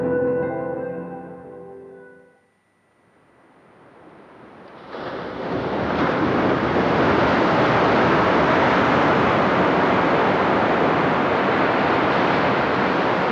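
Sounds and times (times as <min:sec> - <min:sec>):
musical chime: 0:00.0 - 0:03.0
waves washing onto the beach at Nakahama in Yamamoto town: 0:04.4 - 0:13.3.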